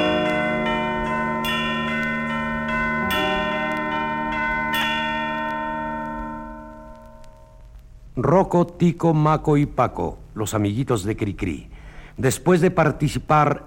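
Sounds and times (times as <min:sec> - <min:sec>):
bells ringing the hour: 0:00.0 - 0:07.6
speech: 0:08.2 - 0:13.6.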